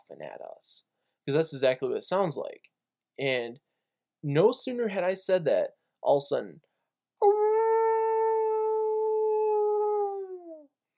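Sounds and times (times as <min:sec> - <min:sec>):
speech: 0:00.1 - 0:07.4
wolf howling from a tamarack swamp: 0:07.2 - 0:10.6.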